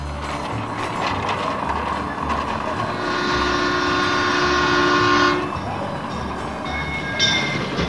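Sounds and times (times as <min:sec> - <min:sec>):
train rumbling along tracks: 0:00.0 - 0:07.8
train whistle blast: 0:02.9 - 0:05.6.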